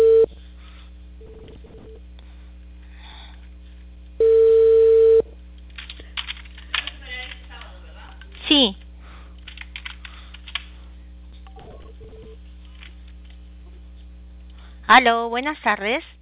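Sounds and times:
telephone call tone on the line: 0.0s - 0.3s, 1.2s - 2.0s, 4.2s - 5.3s
speech: 14.9s - 16.1s.

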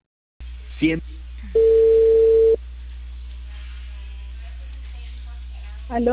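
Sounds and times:
speech: 0.8s - 1.8s, 5.9s - 6.1s
steady telephone tone after a dropped call: 1.5s - 2.6s.

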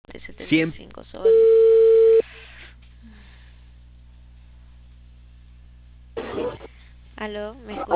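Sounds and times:
speech: 0.1s - 1.6s, 7.2s - 7.9s
telephone busy tone beep after a call was cut off: 1.3s - 2.2s.

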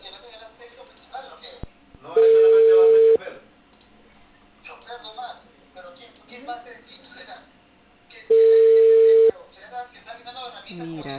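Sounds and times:
telephone ringing tone of outgoing call: 2.2s - 3.2s, 8.3s - 9.3s.

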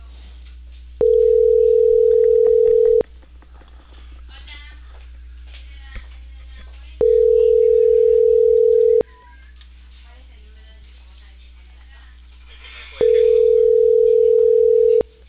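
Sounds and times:
loud telephone tone beeps over a phone line: 1.0s - 3.0s, 7.0s - 9.0s, 13.0s - 15.0s
faint chatter: 3.8s - 15.2s.

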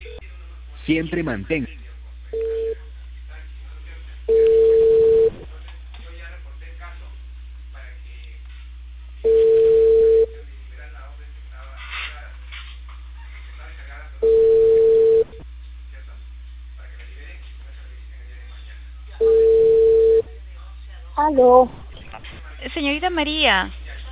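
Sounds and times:
low constant hum: 0.0s - 24.1s
speech: 0.9s - 1.8s, 23.1s - 23.8s
telephone ringback tone while a caller rings someone back: 9.3s - 10.3s, 14.2s - 15.4s, 19.2s - 20.2s.

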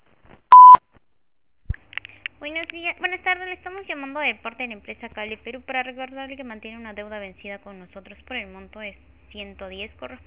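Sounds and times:
voicemail beep tone: 0.5s - 0.8s
speech: 2.4s - 10.2s.

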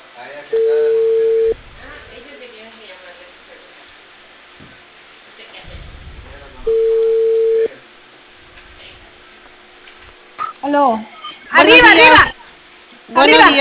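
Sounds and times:
faint hum: 0.0s - 13.5s
cell phone ringing with a steady electronic tone: 0.6s - 1.6s, 6.7s - 7.7s
speech: 10.8s - 12.3s, 13.2s - 13.5s.

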